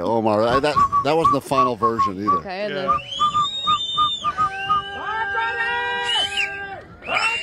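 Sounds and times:
speech: 0.0 - 3.2
crowd noise: 0.0 - 7.4
person whistling: 0.5 - 5.0.

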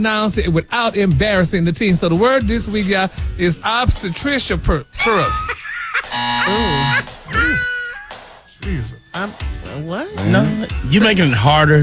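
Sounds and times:
speech: 0.0 - 5.6, 6.4 - 7.7, 8.6 - 11.8
laughter: 0.0 - 11.8
whiny vocal sounds: 0.0 - 11.8
game show wrong-answer buzzer: 2.5 - 11.0.

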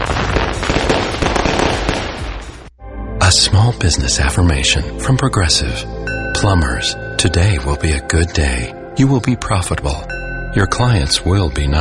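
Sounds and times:
fireworks exploding: 0.0 - 2.7
speech: 3.3 - 11.7.

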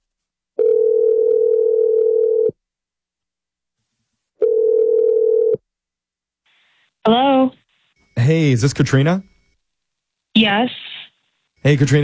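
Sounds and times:
telephone dial tone: 0.6 - 2.6, 4.4 - 5.6
speech: 8.6 - 9.3, 10.4 - 10.8, 11.6 - 12.0.

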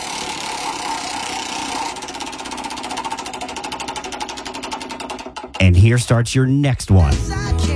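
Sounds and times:
prize wheel spinning in a contest for concert tickets: 0.0 - 6.0
speech: 5.6 - 7.6.

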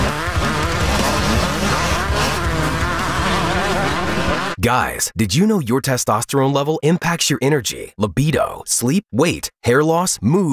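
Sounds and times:
speedway motorcycle engines racing at full throttle on a track: 0.0 - 4.6
speech: 4.6 - 10.5.

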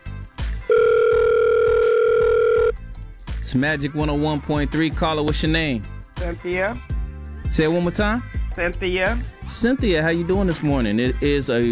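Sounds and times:
click of a phone line picking up: 0.7 - 2.7
telephone dial tone on a phone line: 0.7 - 2.8
speech: 3.5 - 6.9, 7.5 - 11.7.

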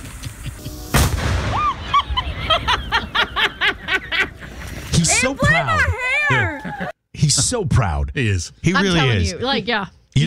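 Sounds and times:
single sharp explosion: 0.9 - 2.1
chirpy rhythmic snickering laughter: 1.8 - 4.6
speech: 5.2 - 10.2.

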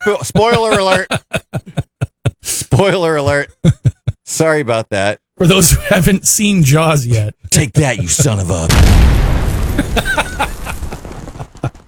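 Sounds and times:
speech: 0.0 - 1.3, 2.8 - 10.4
laughter: 0.0 - 4.3, 9.8 - 11.8
crackling debris: 8.7 - 11.8
oxygen tank exploding after being shot in a film excerpt: 8.7 - 11.8
scattered pops: 8.7 - 11.8.

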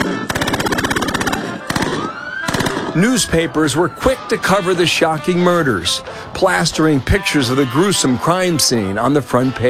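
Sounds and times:
Tommy gun machine-gun barrage: 0.0 - 3.0
speech: 3.0 - 9.6.

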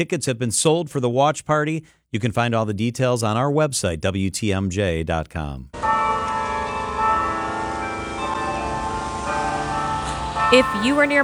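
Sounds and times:
speech: 0.0 - 5.9, 10.5 - 11.2
bell tower carillon bells playing a melody: 5.9 - 11.2.

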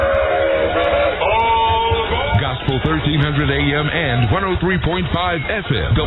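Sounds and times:
train whistle sound effect in a church radio announcement: 0.0 - 1.6
continuous low rumbling chug of a rolling train: 0.0 - 6.0
speech: 2.6 - 6.0.

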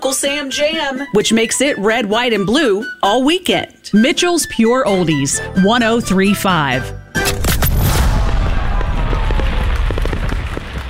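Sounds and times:
speech: 0.0 - 7.4
fireworks crackling and popping: 7.4 - 10.8
fireworks exploding: 7.6 - 10.8.

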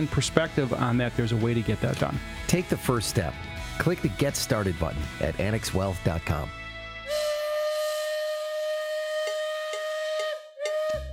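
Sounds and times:
speech: 0.0 - 7.3
steam train whistle in Wisconsin Dells: 7.1 - 11.1.

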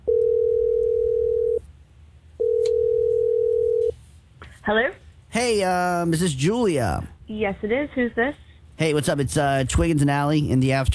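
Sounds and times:
phone line ringing on the caller's end: 0.1 - 1.6, 2.4 - 3.9
speech: 4.7 - 10.9.

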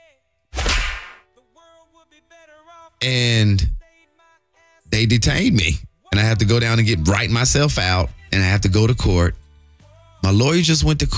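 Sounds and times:
sharp slap sound effect: 0.5 - 1.2
speech: 2.1 - 3.8, 5.0 - 9.4, 10.2 - 11.1.

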